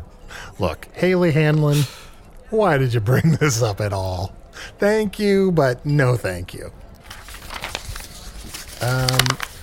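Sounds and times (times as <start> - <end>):
speech: 0.6 - 6.8, 8.8 - 9.5
sheet of paper being crumpled up: 7.0 - 9.6.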